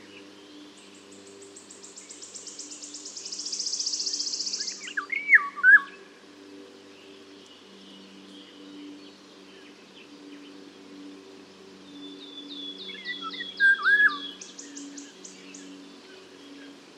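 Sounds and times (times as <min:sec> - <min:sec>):
Eurasian golden oriole Oriolus oriolus fluty whistled phrases: 0:03.3 - 0:06.0, 0:12.8 - 0:15.0.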